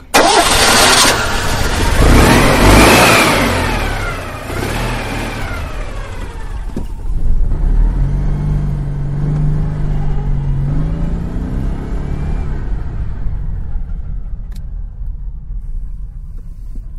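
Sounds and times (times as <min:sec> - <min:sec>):
small Citroën 2CV engine revving and driving: 0:00.1 - 0:06.8, 0:07.4 - 0:13.5.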